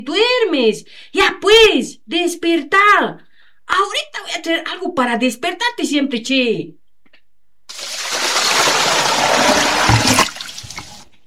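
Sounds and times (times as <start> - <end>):
speech: 0.0 - 6.8
bucket of cold water thrown over someone: 7.7 - 11.2.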